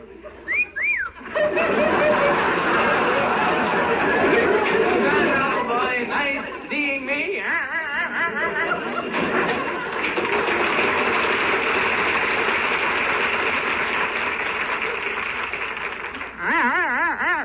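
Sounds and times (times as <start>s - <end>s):
laughter: 0.0s - 17.4s
lively crowd chattering: 0.0s - 17.4s
person whistling: 0.5s - 1.2s.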